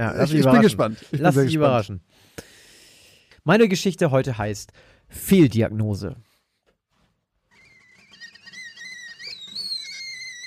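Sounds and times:
speech: 0.0s - 2.5s, 3.4s - 6.3s
tea kettle whistling in a kitchen: 7.6s - 10.4s.

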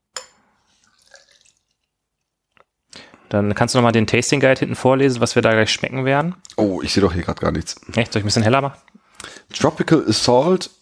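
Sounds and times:
Irish IPA beer poured from a bottle: 0.7s - 1.9s
speech: 3.3s - 10.8s.

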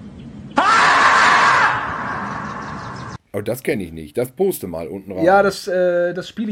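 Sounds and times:
marmot screaming: 0.6s - 3.2s
speech: 3.4s - 6.5s.

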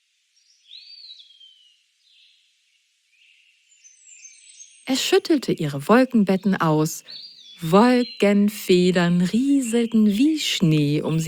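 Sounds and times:
soft high-pitched bird chirps with whistled calls and tweets: 3.8s - 11.2s
speech: 4.9s - 11.2s.

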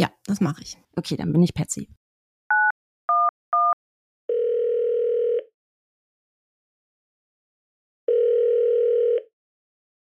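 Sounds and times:
speech: 0.0s - 2.0s
telephone ringing tones of an emergency call: 2.5s - 5.5s, 8.1s - 9.3s.

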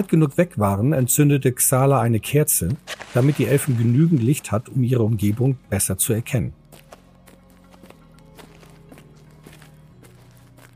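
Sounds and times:
speech: 0.0s - 6.6s
soft echoing footsteps at walking pace: 2.7s - 5.7s, 6.6s - 10.7s.

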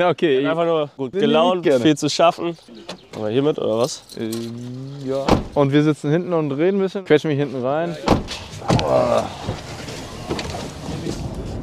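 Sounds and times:
speech: 0.0s - 9.7s
road rumble inside a moving car: 2.4s - 6.6s, 7.4s - 11.6s.

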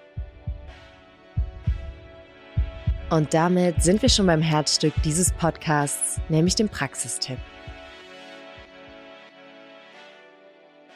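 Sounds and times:
heartbeat sound effect: 0.1s - 6.8s, 7.4s - 7.9s
speech: 3.1s - 7.6s.

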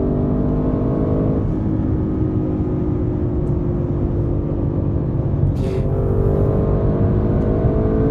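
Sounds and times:
car engine held at full throttle near 7000 rpm redline: 0.0s - 8.0s
road and wind noise at about 260 km/h: 0.0s - 8.0s.

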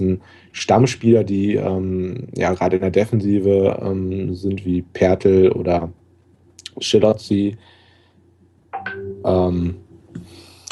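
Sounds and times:
speech: 0.0s - 6.0s, 6.8s - 7.8s, 9.2s - 9.8s
low hum: 0.0s - 10.7s
electronic phone notification chime: 8.8s - 9.5s.

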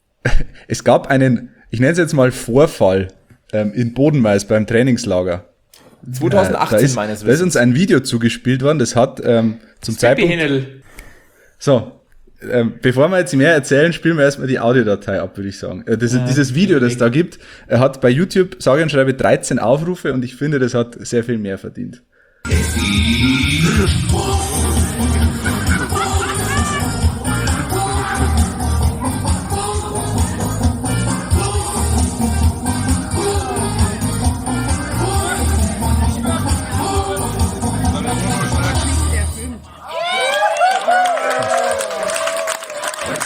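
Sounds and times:
speech: 0.3s - 10.9s, 11.6s - 25.2s
laughter: 6.2s - 7.2s, 23.6s - 30.6s, 39.8s - 43.2s
busy crowd chattering and calling out in a beer garden: 22.5s - 40.1s
solo entertainer performing over amplified sound: 22.5s - 40.6s.

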